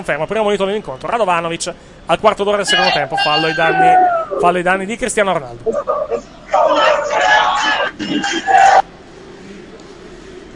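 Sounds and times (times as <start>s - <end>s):
speech: 0.0s - 8.8s
large stadium crowd of football fans chanting: 2.7s - 4.1s, 5.8s - 8.8s.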